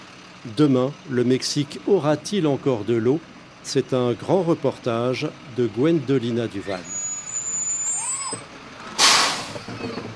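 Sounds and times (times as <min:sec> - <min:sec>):
water tanker truck engine rumbling and idling: 0:00.0 - 0:10.1
speech: 0:00.4 - 0:07.0
water tanker truck air brakes releasing: 0:06.9 - 0:08.4, 0:09.0 - 0:10.0.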